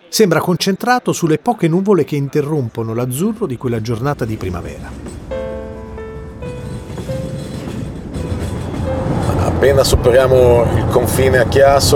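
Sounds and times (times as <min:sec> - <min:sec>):
speech: 0:00.1 - 0:05.2, 0:09.6 - 0:11.9
train carriage rolling on rails heard from inside the car: 0:02.7 - 0:11.9.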